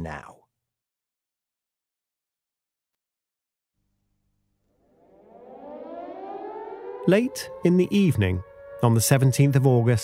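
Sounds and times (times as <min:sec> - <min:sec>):
air raid siren wailing at Peenemünde: 0:04.6 - 0:10.0
speech: 0:07.1 - 0:10.0.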